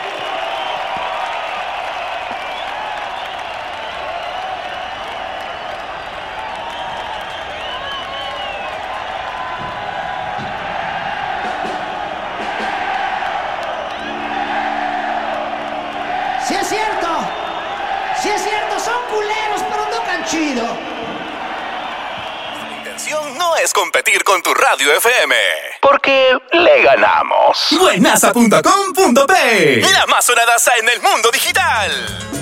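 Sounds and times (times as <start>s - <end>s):
large audience applauding and cheering: 0.0s - 25.2s
sharp whistles: 2.4s - 9.6s, 20.8s - 23.0s
speech: 23.8s - 32.3s.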